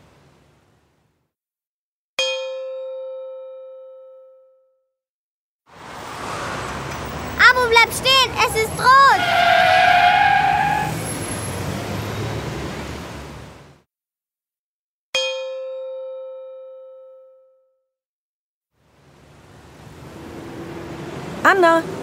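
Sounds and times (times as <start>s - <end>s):
car tire screeching: 5.8s - 12.7s
speech: 7.8s - 9.5s, 21.5s - 22.0s.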